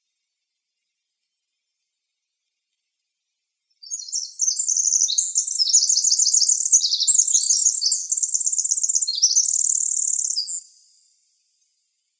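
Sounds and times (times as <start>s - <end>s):
winter wren song of high tinkling trills in Arizona: 3.8s - 12.0s.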